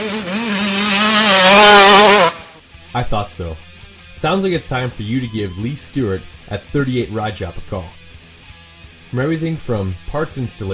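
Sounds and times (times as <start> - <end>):
motorbike engine revving: 0.0 - 2.6
speech: 3.0 - 8.0, 9.1 - 10.7.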